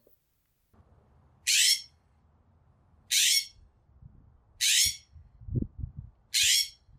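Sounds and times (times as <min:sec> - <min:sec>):
California scrub jay harsh rasping calls: 0:01.4 - 0:02.0, 0:03.1 - 0:03.6, 0:04.6 - 0:05.1, 0:06.3 - 0:06.8.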